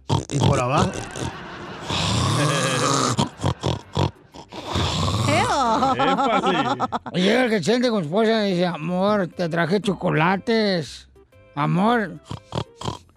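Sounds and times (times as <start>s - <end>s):
voice imitating an old woman snoring in her sleep: 0.0s - 5.9s, 12.2s - 13.1s
speech: 0.4s - 2.2s, 5.9s - 13.0s
laughter: 0.7s - 4.3s, 5.3s - 7.6s.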